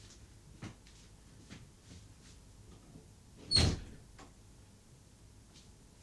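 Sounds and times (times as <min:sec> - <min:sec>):
faint knocks and shuffles: 0:00.0 - 0:03.2, 0:05.4 - 0:06.0
door squeak: 0:03.4 - 0:04.0.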